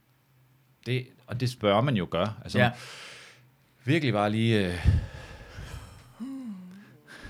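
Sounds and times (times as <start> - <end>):
speech: 0.8 - 3.2, 3.8 - 5.1
deep breath drawn in to fill the lungs: 2.8 - 3.4, 4.8 - 7.2.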